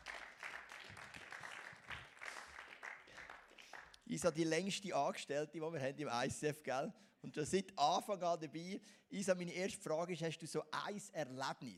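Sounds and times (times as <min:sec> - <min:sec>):
audience applause: 0:00.0 - 0:04.0
speech: 0:04.1 - 0:11.7.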